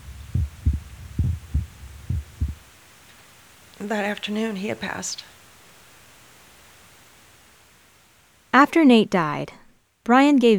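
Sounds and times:
human heartbeat thumping: 0:00.0 - 0:02.7
low steady hum: 0:00.0 - 0:10.0
speech: 0:03.8 - 0:05.4, 0:08.6 - 0:10.5.

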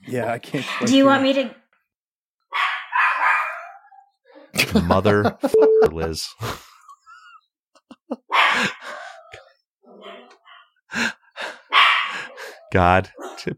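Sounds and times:
speech: 0:00.1 - 0:01.6, 0:04.7 - 0:06.7, 0:12.7 - 0:13.5
dog barking: 0:02.5 - 0:04.1, 0:08.3 - 0:10.7, 0:11.7 - 0:13.5
laughter: 0:04.6 - 0:09.1.

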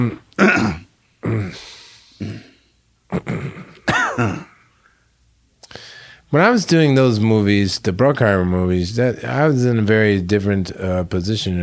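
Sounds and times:
speech: 0:00.0 - 0:00.8, 0:06.3 - 0:11.6
person coughing: 0:00.0 - 0:01.6, 0:03.1 - 0:04.6
person clearing throat: 0:00.0 - 0:04.6.

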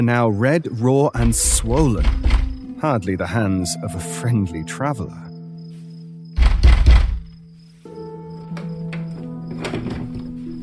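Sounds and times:
speech: 0:00.0 - 0:05.3
fist pounding on a wooden door: 0:06.4 - 0:07.3.

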